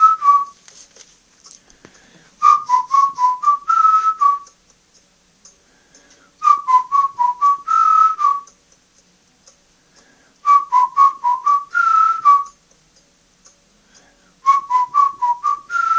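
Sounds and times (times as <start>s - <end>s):
person whistling a tune: 0.0s - 0.6s, 2.4s - 4.6s, 6.4s - 8.6s, 10.4s - 12.6s, 14.4s - 15.9s.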